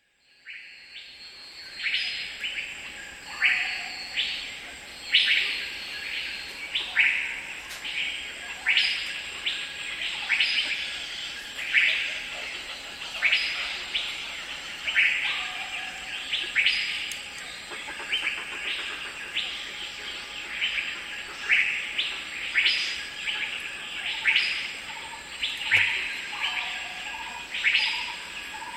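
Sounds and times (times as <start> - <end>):
bluebirds singing: 1.0 - 28.7
pileated gibbons calling: 8.5 - 28.7.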